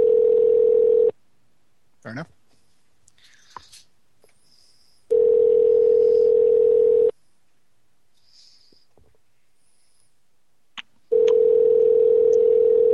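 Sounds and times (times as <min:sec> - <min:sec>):
outgoing phone call ringback tones: 0:00.0 - 0:01.1, 0:05.1 - 0:07.2, 0:11.1 - 0:12.9
speech: 0:02.1 - 0:02.4.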